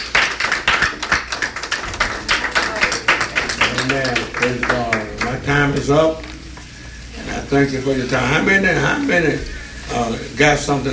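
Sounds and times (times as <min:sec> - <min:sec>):
audience applause: 0:00.0 - 0:05.9
speech: 0:03.9 - 0:04.8, 0:05.5 - 0:06.3, 0:07.5 - 0:10.9.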